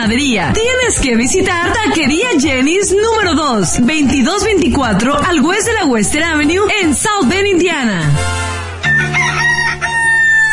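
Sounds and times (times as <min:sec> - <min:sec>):
speech: 0:00.0 - 0:08.4
rooster crowing: 0:08.8 - 0:10.5.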